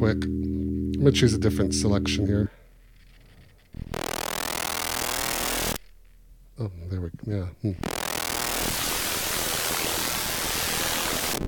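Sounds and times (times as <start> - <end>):
speech: 0.0 - 0.4, 1.0 - 2.6, 6.6 - 8.0
synthesizer white noise hiss: 0.0 - 2.4, 3.8 - 5.9, 7.8 - 11.4.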